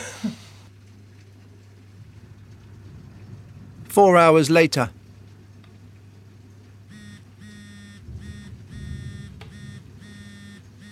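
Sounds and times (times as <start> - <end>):
low rumble: 0.0 - 10.8
speech: 4.0 - 5.0
electronic telephone ring: 6.9 - 10.8.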